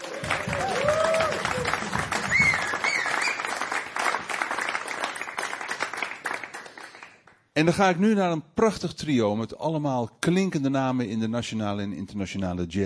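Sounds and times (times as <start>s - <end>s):
faint audience cheers and whistles: 0.0s - 3.7s
live audience applause: 0.0s - 7.2s
speech: 7.6s - 12.8s.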